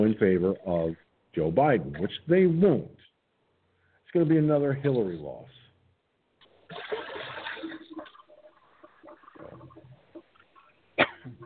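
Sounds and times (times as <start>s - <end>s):
speech: 0.0s - 3.1s, 4.1s - 5.6s
water trickling: 6.4s - 10.7s
running water gushing: 6.7s - 10.5s.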